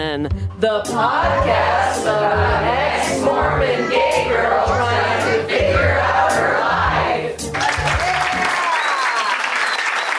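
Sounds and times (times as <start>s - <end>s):
speech: 0.2s - 6.5s
large rally crowd chanting and cheering at a live event: 0.9s - 8.8s
crowd clapping: 7.4s - 10.1s.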